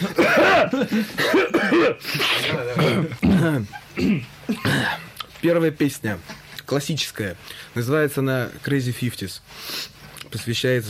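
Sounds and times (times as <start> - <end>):
speech: 0.0 - 4.3, 5.4 - 10.8
throat-clearing grunts: 0.0 - 5.2
coughing: 0.0 - 5.3.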